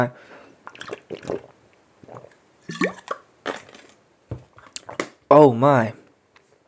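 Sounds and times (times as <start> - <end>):
speech: 0.0 - 1.5, 2.7 - 3.1, 5.3 - 6.0
irregular drips and plops: 0.6 - 3.6
squishy gulps: 0.6 - 3.8, 4.6 - 5.1
water being drunk or poured: 0.6 - 3.8, 4.6 - 5.1.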